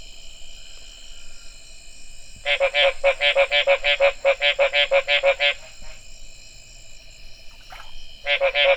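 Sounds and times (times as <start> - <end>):
steady high hum: 0.0 - 8.7
Mexican treefrog Smilisca baudinii calling in short harsh nasal notes: 2.4 - 6.0, 7.5 - 8.7.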